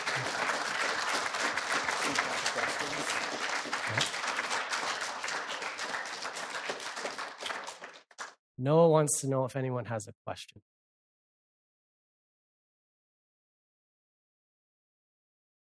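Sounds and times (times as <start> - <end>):
audience applause: 0.0 - 8.4
speech: 8.6 - 10.8.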